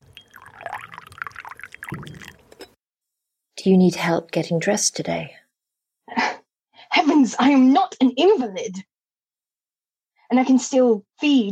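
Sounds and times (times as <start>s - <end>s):
tea pouring into a cup: 0.0s - 2.6s
speech: 1.9s - 2.3s, 3.6s - 5.4s, 7.2s - 8.9s, 10.3s - 11.5s.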